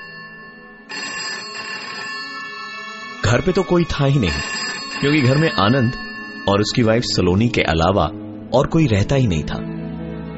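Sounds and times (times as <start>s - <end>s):
hotel phone ringing with electronic tone: 0.0s - 7.9s
speech: 3.3s - 9.7s.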